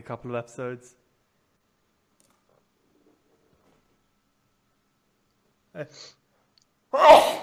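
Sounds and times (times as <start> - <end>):
speech: 0.0 - 1.0, 5.8 - 6.2, 6.9 - 7.4
person sneezing: 7.0 - 7.4.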